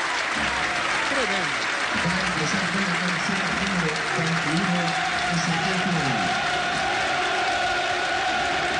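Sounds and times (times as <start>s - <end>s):
large stadium crowd at a football match clapping and cheering: 0.0s - 8.7s
stadium crowd chant-like shouts: 4.8s - 8.7s.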